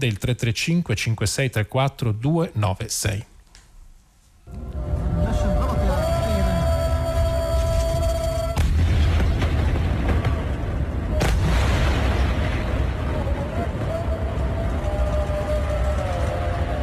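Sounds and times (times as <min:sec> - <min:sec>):
speech: 0:00.0 - 0:03.3
clamor: 0:04.5 - 0:16.8
deep heavy booms of explosions in a war zone: 0:07.6 - 0:16.5
sharp broadband blast: 0:08.5 - 0:13.8.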